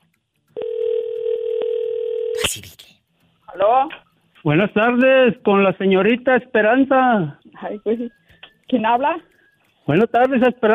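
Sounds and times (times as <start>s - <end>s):
telephone ringing tone on the line: 0.6s - 2.4s
speech: 3.6s - 9.3s, 9.9s - 10.7s.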